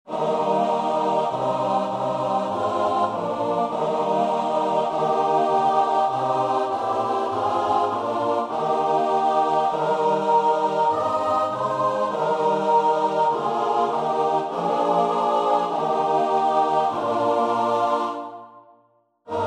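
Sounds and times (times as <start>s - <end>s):
choir singing a hymn: 0.1s - 18.7s, 19.3s - 19.4s.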